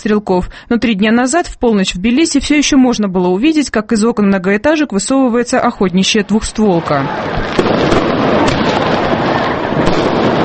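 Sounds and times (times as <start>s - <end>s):
speech: 0.0s - 8.1s
New Year's Eve fireworks crackling and booming over residential courtyards in Tbilisi: 6.4s - 10.4s
sharp fireworks bangs: 6.6s - 10.4s.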